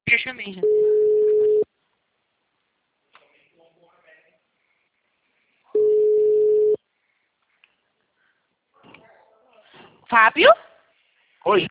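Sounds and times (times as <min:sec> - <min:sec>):
speech: 0:00.3 - 0:01.0, 0:10.2 - 0:10.6, 0:11.4 - 0:11.6
telephone line tone electronic beeps after a dropped call: 0:00.6 - 0:01.6, 0:05.8 - 0:06.8.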